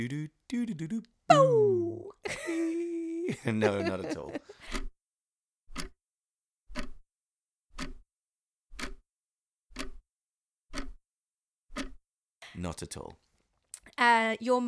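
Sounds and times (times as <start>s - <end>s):
speech: 0.0s - 2.6s, 3.3s - 4.9s, 12.6s - 13.3s, 14.0s - 14.6s
laughter: 2.2s - 4.6s
clock ticking: 4.7s - 5.0s, 5.7s - 6.0s, 6.7s - 7.0s, 7.7s - 8.0s, 8.7s - 9.0s, 9.7s - 10.0s, 10.7s - 11.0s, 11.7s - 12.0s.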